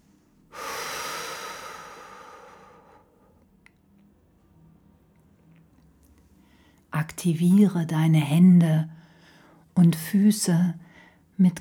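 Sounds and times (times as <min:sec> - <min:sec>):
deep forceful breath: 0:00.5 - 0:03.4
speech: 0:07.2 - 0:09.0, 0:09.8 - 0:11.5.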